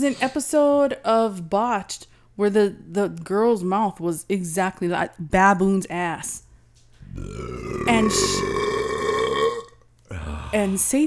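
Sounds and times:
speech: 0.0 - 6.4, 7.1 - 9.0, 10.1 - 11.0
long loud guttural burp: 7.0 - 10.7.

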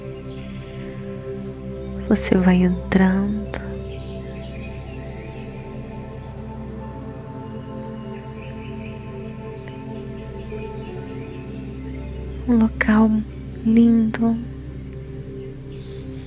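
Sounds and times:
songbirds singing in a forest: 0.0 - 16.2
steady humming ambient drone: 0.0 - 16.2
speech: 2.1 - 3.6, 12.6 - 14.5.

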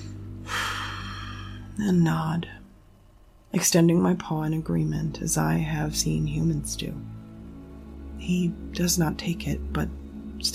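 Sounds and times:
deep breath drawn in: 0.0 - 1.7
speech: 1.8 - 2.6, 3.5 - 7.2, 8.2 - 10.5.

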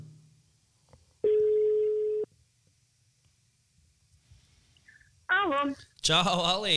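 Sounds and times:
ringback tone on an outgoing phone call: 1.3 - 2.3
speech: 6.1 - 6.7.

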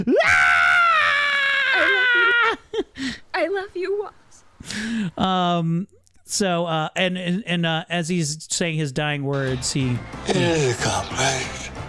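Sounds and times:
speech: 0.0 - 0.4, 2.5 - 11.8
human voice imitating a creature's drawn-out scream: 0.0 - 2.4.

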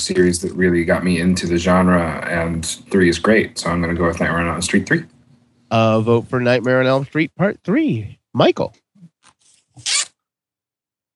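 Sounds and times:
speech: 0.0 - 8.8, 9.8 - 10.0
clothing zipper being pulled: 9.2 - 10.2.

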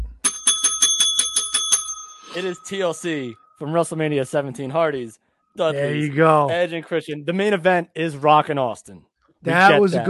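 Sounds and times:
small bright bell ringing rapidly for a correct answer: 0.0 - 3.6
speech: 2.4 - 10.0.

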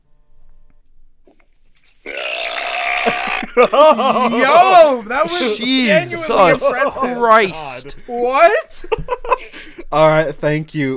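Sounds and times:
loud burp: 2.1 - 3.5
laughter: 3.0 - 9.8
speech: 3.6 - 10.9.

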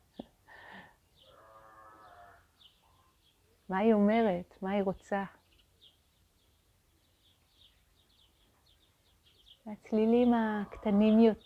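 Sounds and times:
sheep bleating: 1.3 - 2.5
speech: 3.7 - 5.4, 9.7 - 11.4.

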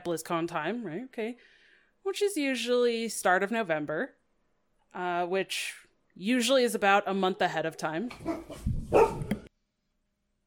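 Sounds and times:
speech: 0.0 - 4.2, 4.9 - 9.2
dogs barking: 8.1 - 9.4.

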